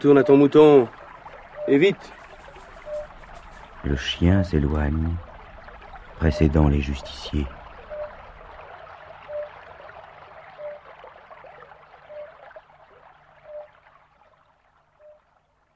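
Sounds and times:
speech: 0.0 - 1.0, 1.6 - 2.2, 3.8 - 5.3, 6.2 - 7.6
river water flowing in the morning: 0.0 - 15.7.

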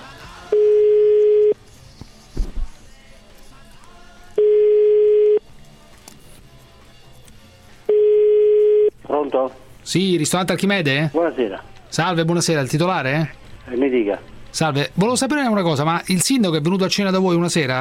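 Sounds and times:
ringback tone on a phone line while calling a restaurant in Rome: 0.5 - 1.6, 4.4 - 5.4, 7.9 - 8.9
speech: 9.4 - 17.7.

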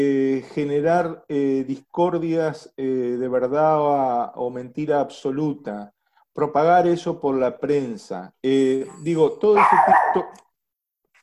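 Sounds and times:
speech: 0.0 - 10.4
dog barking: 9.5 - 10.4.

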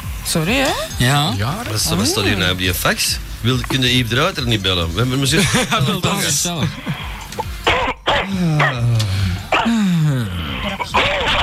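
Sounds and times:
speech: 0.3 - 7.2, 8.3 - 9.2
laughter: 4.5 - 7.4
harsh coughing and throat clearing: 7.6 - 8.9, 9.5 - 11.2.

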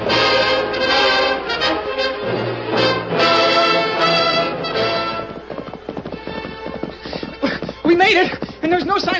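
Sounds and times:
horses galloping as riders race ahead of outlaws: 0.0 - 9.1.

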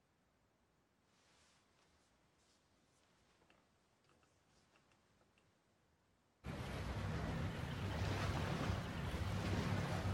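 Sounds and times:
rushing water from a sailing boat: 6.4 - 10.1
wind from a sailing boat: 6.4 - 10.1
low rumble: 6.5 - 10.1.

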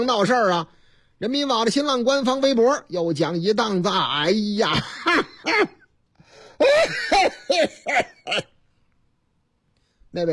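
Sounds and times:
speech: 0.0 - 5.8, 6.6 - 8.5, 10.1 - 10.3
person coughing in a loud, harsh series of hacking bursts: 6.6 - 8.6.

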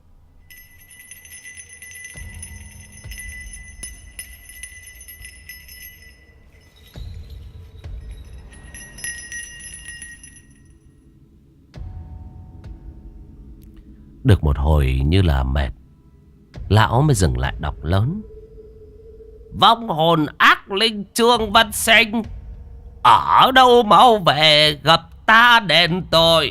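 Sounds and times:
small hand bell shaken during a ritual: 0.5 - 10.9
speech: 14.3 - 15.8, 16.7 - 18.3, 19.6 - 22.4, 23.0 - 26.4.

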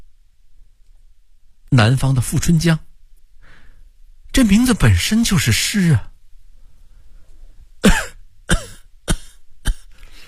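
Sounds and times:
speech: 1.7 - 2.9, 4.4 - 6.1
sick patient coughing harshly: 7.8 - 10.0.

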